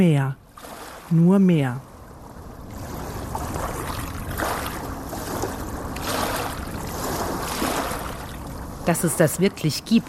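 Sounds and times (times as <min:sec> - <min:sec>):
speech: 0:00.0 - 0:00.4, 0:01.1 - 0:01.9, 0:08.8 - 0:10.0
long waves washing up a beach: 0:00.5 - 0:01.4, 0:02.0 - 0:10.0
water dragging sand and small stones down the beach: 0:02.7 - 0:08.7.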